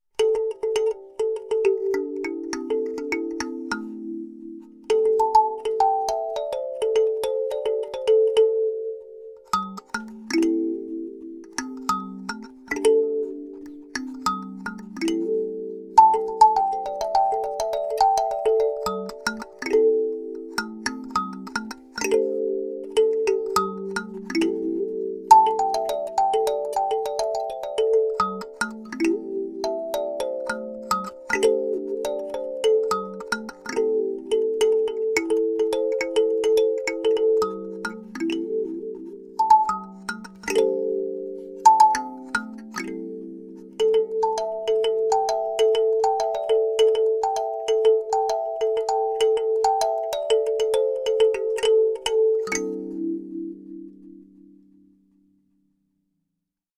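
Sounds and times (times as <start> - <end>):
alto kalimba: 0.2 - 55.0.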